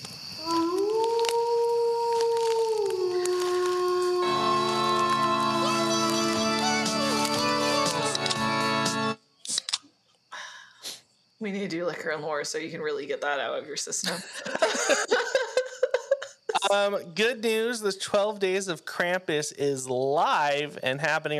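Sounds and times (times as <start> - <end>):
person imitating a wolf howl: 0.4 - 6.6
clicks: 7.2 - 8.4
speech: 11.5 - 15.3, 16.7 - 21.3
laughter: 14.0 - 17.0.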